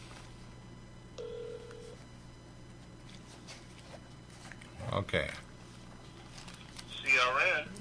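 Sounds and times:
electronic telephone dialing tone: 1.2s - 2.1s
speech: 5.0s - 5.5s, 7.2s - 7.7s.

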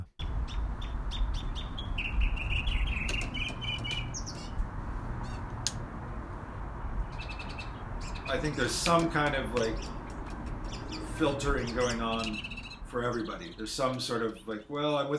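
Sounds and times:
faint birds: 0.0s - 4.6s, 6.9s - 14.8s
steady low outdoor rumble: 0.0s - 15.1s
small backyard bird chirping and calling: 0.2s - 4.6s, 7.0s - 8.6s, 9.5s - 14.7s
speech: 8.3s - 10.0s, 11.2s - 15.1s.

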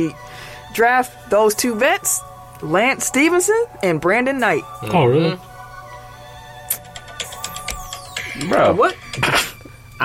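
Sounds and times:
speech: 0.0s - 5.5s, 8.4s - 10.0s
phone ringtone with electronic tones and chiming accents: 6.7s - 9.8s.

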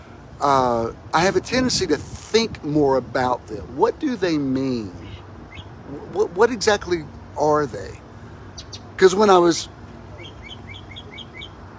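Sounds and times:
low constant hum: 0.0s - 11.7s
speech: 0.4s - 5.0s, 5.9s - 8.0s, 9.0s - 9.8s
small bird chirping: 5.0s - 6.1s, 8.5s - 9.0s, 10.1s - 11.6s.

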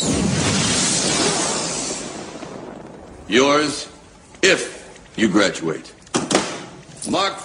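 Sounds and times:
signal flare fired from sidearm hissing and fizzing: 0.0s - 5.0s
speech: 3.3s - 6.0s, 7.1s - 7.4s.

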